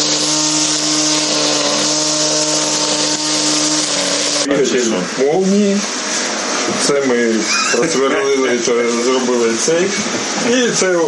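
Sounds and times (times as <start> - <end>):
homemade lawnmower from drone wreckage running: 0.0 - 4.5
speech: 4.5 - 6.0, 6.7 - 11.0.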